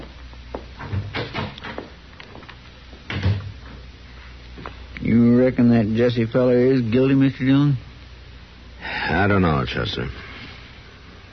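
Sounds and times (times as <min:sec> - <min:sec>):
door shutting with a thud: 0:00.8 - 0:01.9, 0:03.1 - 0:03.6
speech: 0:05.1 - 0:07.9, 0:09.1 - 0:10.3.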